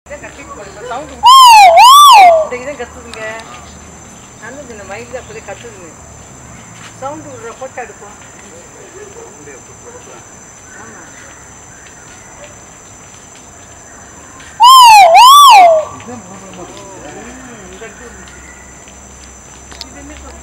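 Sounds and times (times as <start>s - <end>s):
great argus call: 1.2s - 2.6s, 14.6s - 16.0s.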